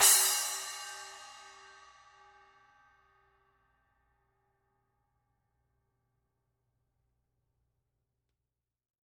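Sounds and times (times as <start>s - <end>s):
10-inch bronze splash cymbal hit on the edge: 0.0s - 2.3s.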